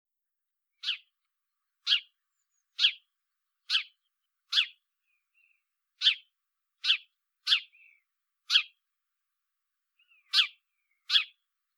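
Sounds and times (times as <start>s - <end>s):
house sparrow Passer domesticus chirping: 0.8s - 1.2s, 1.8s - 8.8s, 10.0s - 11.4s.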